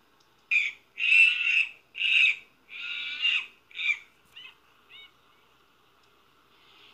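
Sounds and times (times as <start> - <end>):
monkey calling out in loud harsh chattering cries: 0.5 - 5.2.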